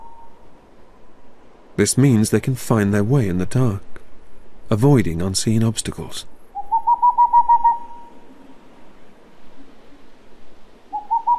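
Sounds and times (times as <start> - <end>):
owl hooting: 0.0 - 0.4, 6.5 - 8.4, 10.8 - 11.3
speech: 1.8 - 3.9, 4.7 - 6.4.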